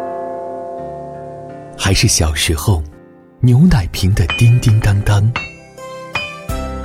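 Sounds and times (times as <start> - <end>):
speech: 1.8 - 5.4
resonant bell tones chiming: 4.0 - 6.6.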